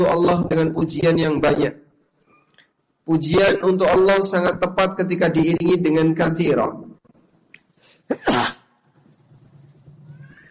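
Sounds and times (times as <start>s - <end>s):
speech: 0.0s - 1.8s, 3.1s - 6.9s, 8.1s - 8.5s
person sneezing: 7.9s - 8.8s.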